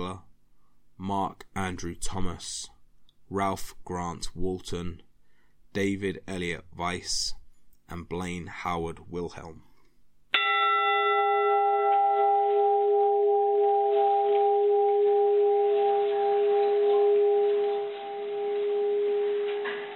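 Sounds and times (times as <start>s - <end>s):
speech: 1.0s - 2.7s, 3.3s - 5.1s, 5.7s - 9.7s
ship's bell ringing: 10.4s - 19.9s.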